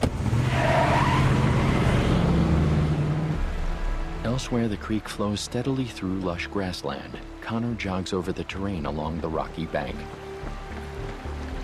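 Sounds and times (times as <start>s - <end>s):
pickup truck engine drone driving off down a road: 0.0s - 5.6s
continuous rush of road and tire noise: 0.0s - 11.6s
speech: 4.4s - 10.6s.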